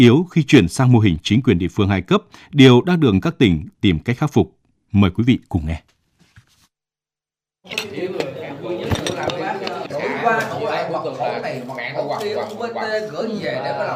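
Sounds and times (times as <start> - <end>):
speech: 0.0 - 5.9, 7.6 - 8.2, 10.2 - 13.9
dishes and cutlery clinking in a staff canteen at lunchtime: 7.7 - 10.6
many voices talking in a staff canteen: 7.7 - 13.9.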